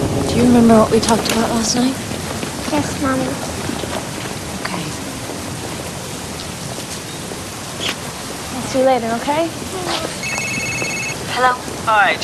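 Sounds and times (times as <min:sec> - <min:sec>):
steady rain hissing and pattering: 0:00.0 - 0:12.2
speech: 0:00.4 - 0:02.0, 0:02.7 - 0:03.5, 0:08.7 - 0:10.0, 0:11.4 - 0:12.2.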